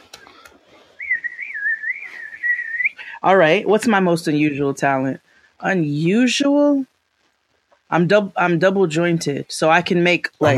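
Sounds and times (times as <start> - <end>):
person whistling a wavering tune: 1.0 - 2.9
speech: 3.2 - 6.9, 7.9 - 10.5.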